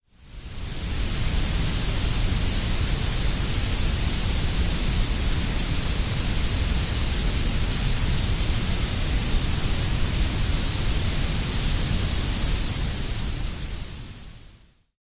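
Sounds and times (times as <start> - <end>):
noise: 0.0 - 14.9.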